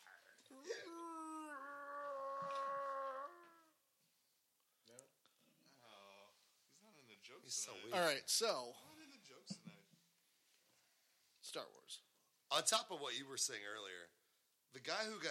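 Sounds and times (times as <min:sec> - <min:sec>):
quieter brief vocal sounds: 0:00.5 - 0:03.7
person imitating a bear growl: 0:00.5 - 0:03.8
speech: 0:07.2 - 0:09.6, 0:11.6 - 0:15.3.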